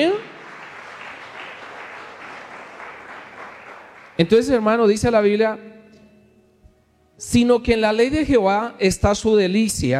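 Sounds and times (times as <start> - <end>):
crowd of people clapping together: 0.0 - 4.5
speech: 4.2 - 5.7, 7.2 - 9.9.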